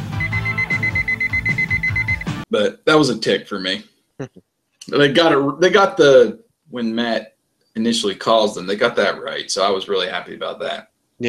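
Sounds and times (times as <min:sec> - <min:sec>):
high thin electronic beeps from a digital watch alarm: 0:00.2 - 0:02.3
speech: 0:02.5 - 0:11.2.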